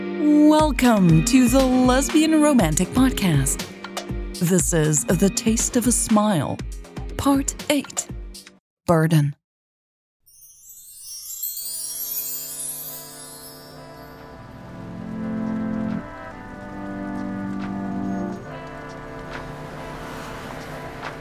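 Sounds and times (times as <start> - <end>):
speech: 0.2 - 3.7, 4.4 - 8.1, 8.9 - 9.4
steady rain pattering: 14.8 - 18.6.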